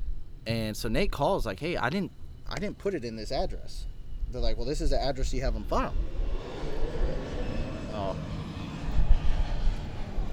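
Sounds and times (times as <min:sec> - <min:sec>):
airplane flying overhead: 0:00.0 - 0:10.3
speech: 0:00.4 - 0:06.2.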